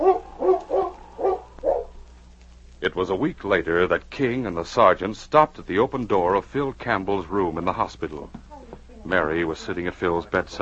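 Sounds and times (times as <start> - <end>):
dog barking: 0.0 - 1.9
speech: 2.8 - 10.5.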